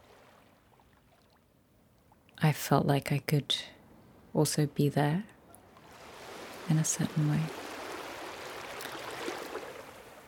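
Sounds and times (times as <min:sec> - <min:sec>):
flowing stream water: 0:00.0 - 0:01.4, 0:05.6 - 0:10.2
speech: 0:02.4 - 0:03.8, 0:04.4 - 0:05.4, 0:06.7 - 0:07.6.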